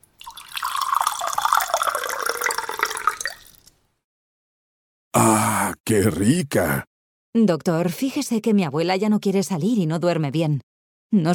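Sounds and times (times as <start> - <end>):
water pouring into a small glass: 0.0 - 3.8
speech: 5.2 - 11.3.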